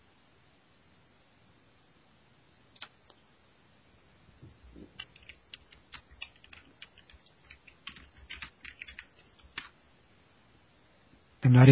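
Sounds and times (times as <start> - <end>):
typing on a computer keyboard: 4.8 - 9.8
speech: 11.5 - 11.7.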